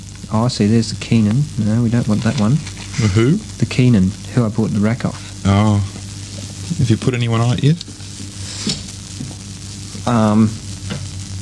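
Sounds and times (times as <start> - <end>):
low hum: 0.0 - 11.3
steady electrical frying crackle like electrical arcing: 0.0 - 11.3
speech: 0.3 - 5.9, 6.7 - 8.0, 10.1 - 10.6.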